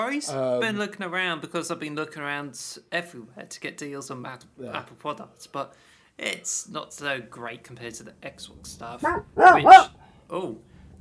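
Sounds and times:
speech: 0:00.0 - 0:10.7
dog barking upset by thunder and lightning: 0:09.0 - 0:09.9.

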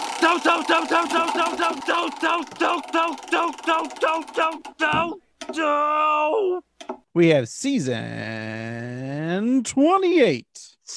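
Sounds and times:
prize wheel spinning and slowing: 0:00.0 - 0:05.6
speech: 0:00.2 - 0:10.9.

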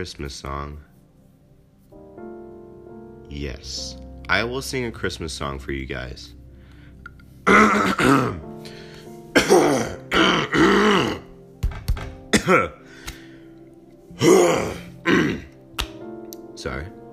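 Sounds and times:
speech: 0:00.0 - 0:00.9, 0:03.3 - 0:06.4, 0:07.5 - 0:08.8, 0:12.5 - 0:12.8
person clearing throat with gravelly rasps and grunts: 0:07.5 - 0:08.4, 0:09.4 - 0:11.3, 0:12.3 - 0:12.8, 0:14.2 - 0:15.5.

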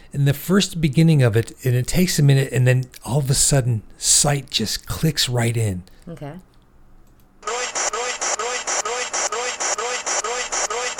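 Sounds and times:
speech: 0:00.1 - 0:06.5
harsh radio static: 0:07.4 - 0:10.9.

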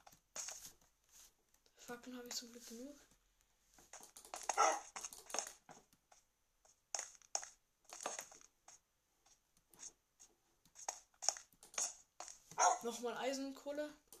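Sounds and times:
speech: 0:01.9 - 0:03.1, 0:12.9 - 0:14.1
dog barking and yelping in a video game: 0:04.5 - 0:05.0, 0:12.5 - 0:12.9.

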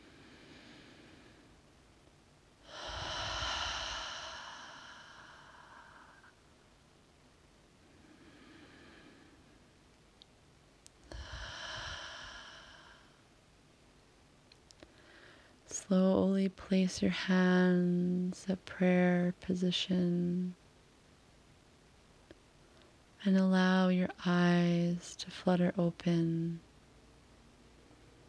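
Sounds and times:
slow deep breathing during guided meditation: 0:00.0 - 0:01.6, 0:02.6 - 0:06.4, 0:07.9 - 0:09.7, 0:11.1 - 0:13.3, 0:14.8 - 0:15.6
speech: 0:15.7 - 0:20.6, 0:23.2 - 0:26.7.

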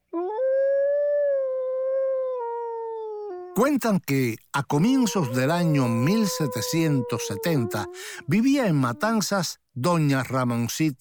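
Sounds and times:
dog howling: 0:00.1 - 0:03.6, 0:04.8 - 0:09.2
speech: 0:03.6 - 0:10.9.

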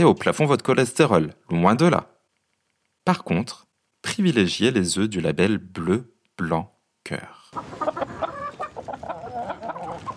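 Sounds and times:
speech: 0:00.0 - 0:02.1, 0:03.0 - 0:08.0
several hens clucking: 0:07.5 - 0:10.1.

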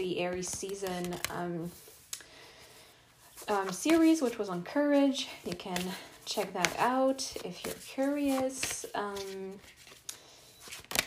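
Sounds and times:
speech: 0:00.0 - 0:01.9, 0:03.4 - 0:09.9
deck of oracle cards being shuffled: 0:00.2 - 0:02.1, 0:03.3 - 0:04.4, 0:05.3 - 0:11.0.

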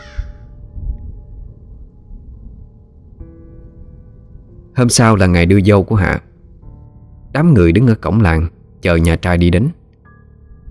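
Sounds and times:
crows cawing: 0:00.0 - 0:00.5
speech: 0:04.8 - 0:06.3, 0:07.3 - 0:09.8.

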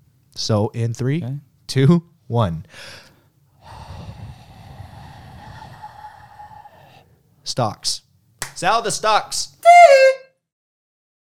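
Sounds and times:
speech: 0:00.4 - 0:03.0, 0:07.5 - 0:08.0, 0:08.6 - 0:10.0
small group of people breathing heavily into a microphone: 0:02.7 - 0:07.2.

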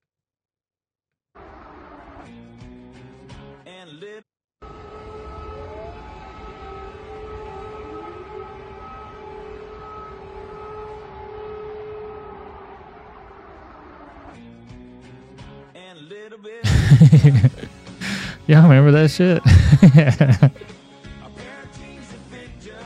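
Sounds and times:
air raid sirens wailing: 0:04.7 - 0:13.2
speech: 0:16.1 - 0:17.6, 0:18.5 - 0:20.7
laughter: 0:16.6 - 0:20.6.

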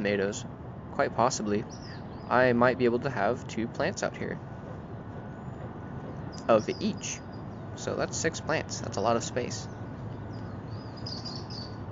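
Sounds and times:
speech: 0:00.0 - 0:04.5, 0:06.5 - 0:07.2, 0:07.8 - 0:09.8
steady low outdoor rumble: 0:00.0 - 0:11.8
local finches chirping: 0:01.5 - 0:02.4, 0:06.1 - 0:11.8.

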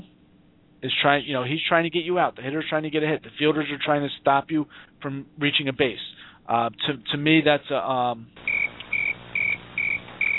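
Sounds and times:
speech: 0:00.8 - 0:08.4
crickets chirping sound effect: 0:08.4 - 0:10.3.

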